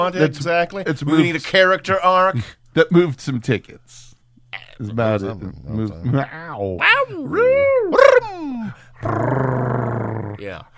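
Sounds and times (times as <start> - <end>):
speech: 0.0 - 7.8, 8.7 - 9.5
voice imitating a menacing growl: 7.3 - 10.4.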